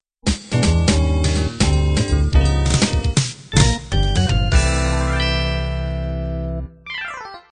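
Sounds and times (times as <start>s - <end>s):
B3 organ jazz ending: 0.5s - 6.8s.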